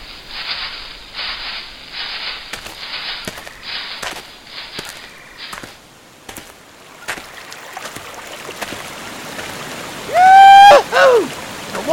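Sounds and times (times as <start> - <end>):
river flowing in a jungle: 0.0 - 11.9
clicks and small splashes: 2.6 - 9.7.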